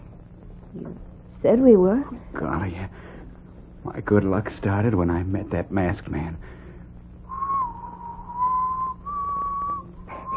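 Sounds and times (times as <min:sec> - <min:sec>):
low hum: 0:00.0 - 0:10.3
speech: 0:00.7 - 0:03.0, 0:03.8 - 0:06.6
person whistling a tune: 0:07.3 - 0:10.3.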